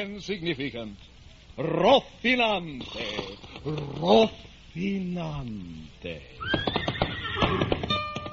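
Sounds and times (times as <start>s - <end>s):
speech: 0.0s - 6.8s, 7.4s - 7.9s
horse whinnying loudly: 6.4s - 8.0s.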